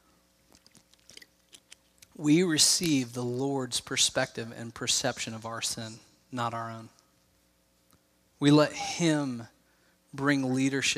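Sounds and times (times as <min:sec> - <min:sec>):
person gulping water: 0:00.5 - 0:02.0
soft wet mouth clicks: 0:00.5 - 0:02.1
speech: 0:02.2 - 0:07.0, 0:08.4 - 0:10.9.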